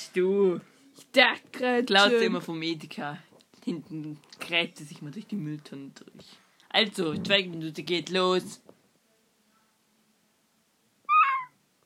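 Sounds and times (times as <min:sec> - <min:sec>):
speech: 0:00.2 - 0:08.8
cat meow from a Nintendo video game: 0:11.1 - 0:11.5.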